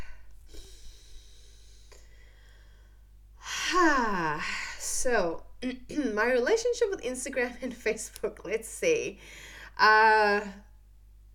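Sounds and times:
deep breath: 0.0s - 3.6s
speech: 3.8s - 10.7s.

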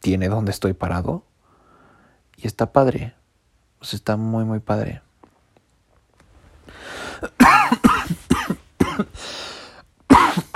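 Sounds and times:
speech: 0.0s - 1.3s, 2.4s - 3.2s, 3.8s - 5.0s
wheezy breath: 1.4s - 2.3s, 6.7s - 7.2s, 9.2s - 9.9s
person with a lingering smoker's cough coughing: 7.0s - 10.5s.

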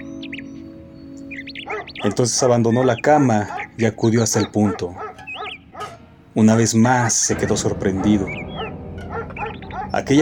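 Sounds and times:
several birds chirping and singing: 0.0s - 10.2s
speech: 1.6s - 5.0s, 6.4s - 8.4s, 10.0s - 10.2s.

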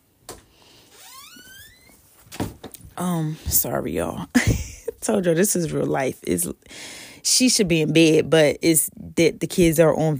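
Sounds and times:
door hinge squeal: 1.0s - 2.0s
door closing thump: 2.3s - 2.7s
speech: 3.0s - 10.1s.

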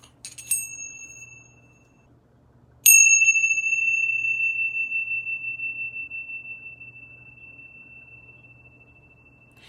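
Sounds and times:
Tibetan tingsha bells used in yoga: 0.3s - 2.1s, 2.9s - 9.6s.

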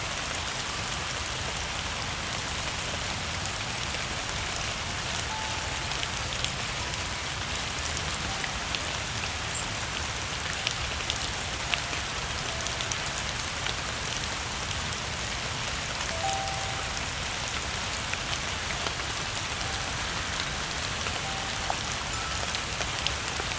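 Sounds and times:
steady dense rain pattering: 0.0s - 23.5s
soft faint xylophone chimes: 16.1s - 17.2s, 19.6s - 23.4s.

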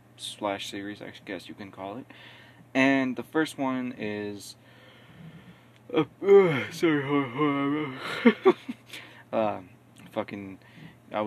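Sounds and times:
speech: 0.2s - 4.6s, 5.9s - 11.2s
short breathy vocal sounds: 5.0s - 8.0s
person yawning: 5.2s - 8.1s.

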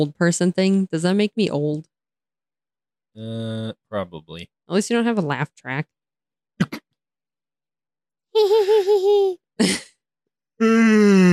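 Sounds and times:
speech: 0.0s - 1.9s, 3.2s - 6.0s, 6.6s - 6.8s, 8.4s - 9.9s, 10.6s - 11.3s
person yawning: 10.6s - 11.3s.

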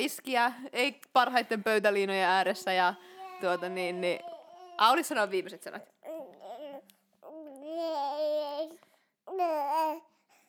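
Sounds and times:
speech: 0.0s - 5.9s
baby babbling: 4.1s - 4.8s, 6.0s - 10.1s.

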